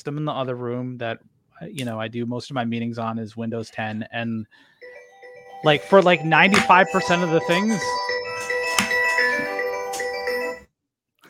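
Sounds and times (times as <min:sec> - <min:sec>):
speech: 0:00.0 - 0:04.7, 0:05.6 - 0:08.0
phone ringtone with melodic electronic tune: 0:04.8 - 0:10.7.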